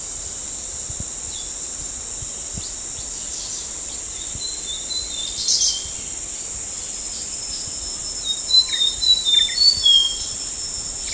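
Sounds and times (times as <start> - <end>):
steady loud insect drone: 0.0 - 11.1
brown fulvetta whistled calls at Danum: 8.2 - 10.3.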